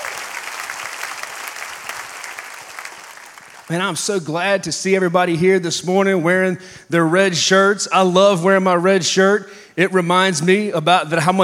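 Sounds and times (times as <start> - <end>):
crowd applauding: 0.0 - 3.8
speech: 3.7 - 11.4.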